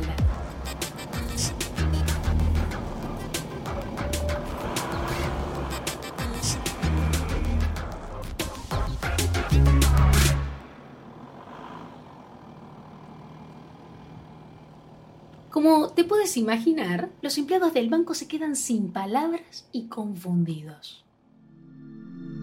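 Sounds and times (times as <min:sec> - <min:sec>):
van engine starting and speeding away: 0:00.0 - 0:15.6
speech: 0:16.2 - 0:21.0.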